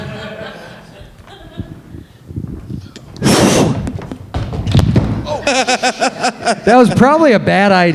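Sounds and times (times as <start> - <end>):
laughter: 0.0 - 2.0, 3.2 - 4.4, 5.2 - 7.3
soft knocks and shuffles: 1.1 - 5.3
speech: 5.5 - 7.9.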